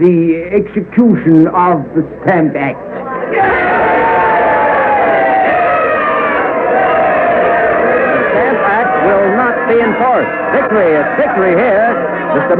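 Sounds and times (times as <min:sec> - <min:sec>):
speech: 0:00.0 - 0:04.2, 0:09.7 - 0:12.5
large crowd cheering and shouting while parading a man through the streets: 0:03.0 - 0:12.5.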